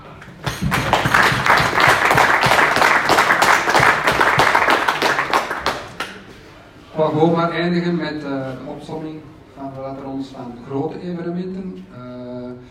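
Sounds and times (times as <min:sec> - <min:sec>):
audience applause for the team: 0:00.2 - 0:06.3
speech: 0:07.0 - 0:12.6.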